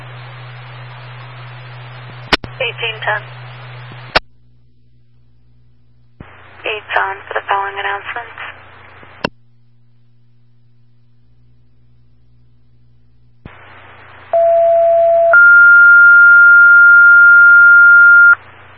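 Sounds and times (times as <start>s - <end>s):
hissy radio channel: 0.0s - 4.2s, 6.2s - 9.3s, 13.4s - 14.4s, 18.1s - 18.7s
speech: 2.6s - 3.4s, 7.0s - 8.4s
two-tone dispatch pager alert over radio: 14.4s - 18.4s.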